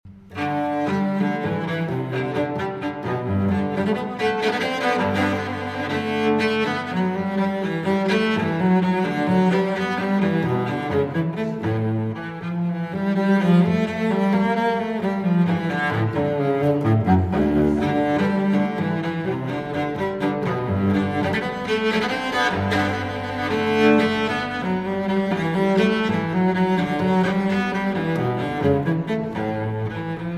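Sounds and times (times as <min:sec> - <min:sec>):
cello suite movement: 0:00.1 - 0:30.3.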